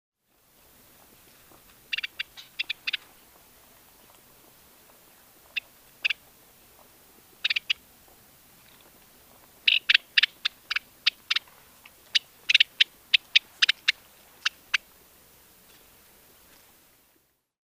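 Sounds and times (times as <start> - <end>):
house wren Troglodytes aedon: 1.9 - 3.1, 7.4 - 7.8, 9.6 - 14.8.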